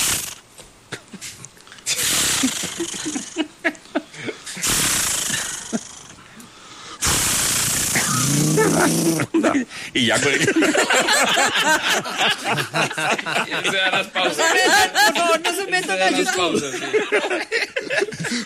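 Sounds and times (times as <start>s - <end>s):
voice imitating a chainsaw starting and running: 1.9s - 3.3s, 4.6s - 6.1s, 7.0s - 9.3s
laughter: 2.4s - 4.5s, 8.5s - 18.4s
speech: 8.8s - 18.4s.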